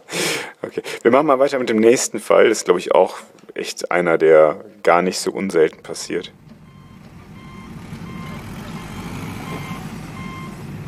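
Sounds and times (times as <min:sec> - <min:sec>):
speech: 0:00.6 - 0:06.4
constant low diesel rumble: 0:05.8 - 0:10.8
truck reversing alarm beeping: 0:05.9 - 0:10.8.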